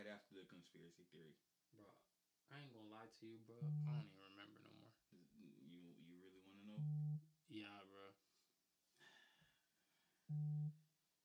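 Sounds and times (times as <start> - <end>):
speech: 0.0 - 8.2, 10.3 - 10.8
phone notification buzzing: 3.6 - 4.0.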